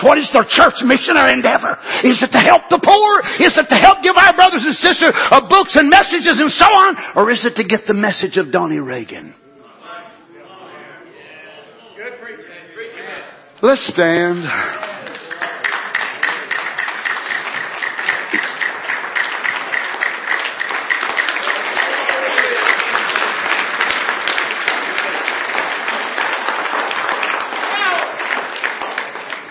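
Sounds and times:
speech: 0.0 - 9.4, 13.6 - 15.0
faint crowd voices: 9.4 - 15.6
audience clapping hands: 14.5 - 29.4.

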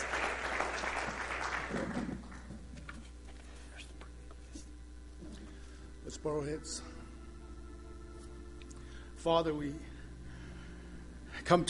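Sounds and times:
crowd clapping in praise: 0.0 - 2.5
speech: 6.2 - 6.9, 9.2 - 9.9, 11.5 - 11.6.

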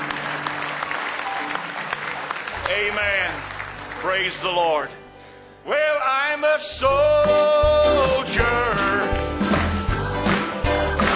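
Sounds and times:
church congregation clapping hands in praise during a worship service: 0.0 - 4.9, 9.0 - 11.1
speech: 2.7 - 5.0, 5.6 - 9.2.

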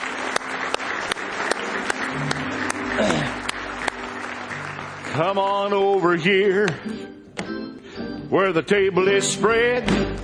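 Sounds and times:
audience applauding: 0.0 - 6.8
speech: 5.2 - 7.2, 8.3 - 10.2.

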